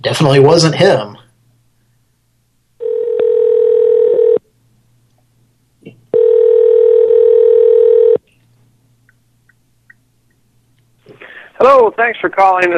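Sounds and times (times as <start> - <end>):
speech: 0.0 - 1.2, 11.6 - 12.7
telephone dial tone on a misdialed call: 2.8 - 4.4, 6.1 - 8.2.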